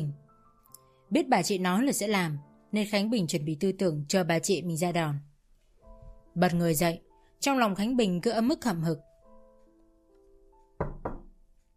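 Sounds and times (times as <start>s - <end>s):
speech: 1.1s - 5.3s, 6.4s - 9.1s
knocking on a door: 10.8s - 11.4s.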